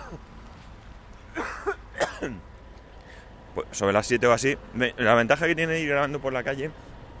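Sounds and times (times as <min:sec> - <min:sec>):
coughs: 0:00.0 - 0:00.2, 0:01.3 - 0:02.4
faint outdoor noise: 0:00.0 - 0:07.1
speech: 0:02.2 - 0:02.5, 0:03.6 - 0:06.9.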